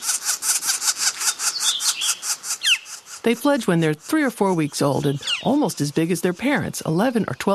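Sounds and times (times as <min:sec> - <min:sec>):
young northern flicker giving harsh raspy calls from ground: 0:00.0 - 0:06.1
speech: 0:03.2 - 0:07.5.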